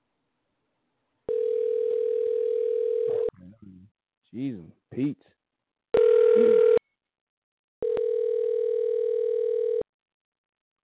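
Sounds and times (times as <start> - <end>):
telephone dial tone while dialing: 1.3 - 3.3, 6.0 - 6.8, 7.8 - 9.8
speech: 4.4 - 5.4.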